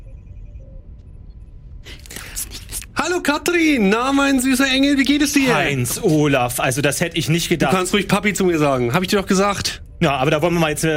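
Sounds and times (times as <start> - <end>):
quiet low rumble with faint tones: 0.0 - 10.9
speech: 1.8 - 10.9.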